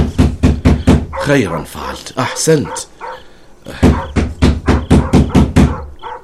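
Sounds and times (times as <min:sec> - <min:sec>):
neighbour knocking on a door: 0:00.0 - 0:01.2, 0:03.7 - 0:05.9
speech: 0:01.3 - 0:02.9.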